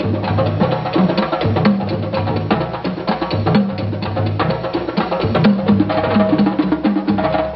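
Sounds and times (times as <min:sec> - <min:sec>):
African lofi drum loops and breaks: 0:00.0 - 0:07.5.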